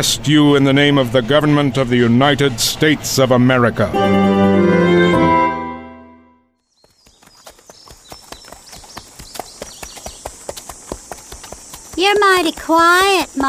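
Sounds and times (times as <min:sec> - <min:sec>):
speech: 0:00.0 - 0:05.4, 0:12.4 - 0:13.4
sustained musical tone: 0:03.4 - 0:06.5
hooves of a ridden horse clip-clopping at a walk: 0:06.7 - 0:13.4.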